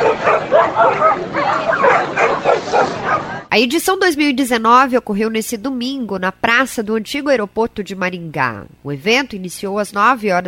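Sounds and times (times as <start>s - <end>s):
dogs barking and yipping at a pet day event on an old airport square in Maringá: 0.0s - 3.5s
busy outdoor background: 0.0s - 3.6s
speech: 3.6s - 10.4s.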